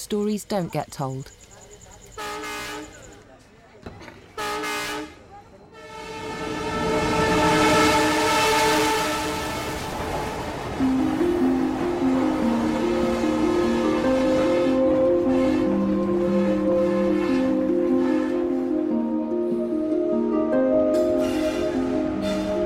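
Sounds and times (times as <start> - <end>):
speech: 0.0 - 1.4
train horn blasts: 2.2 - 3.0, 4.4 - 10.4, 12.6 - 18.8, 20.9 - 22.6
train rumbling past on railway tracks: 5.7 - 22.6.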